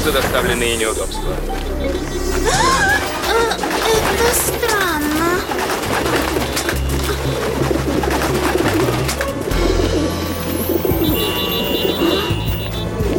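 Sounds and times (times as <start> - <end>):
speech: 0.0 - 6.7
pigeons cooing: 2.9 - 12.6.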